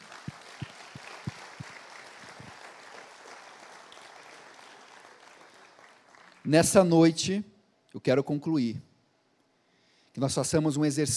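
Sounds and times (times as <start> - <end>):
audience applause: 0.0 - 6.5
speech: 6.5 - 8.9, 10.2 - 11.1.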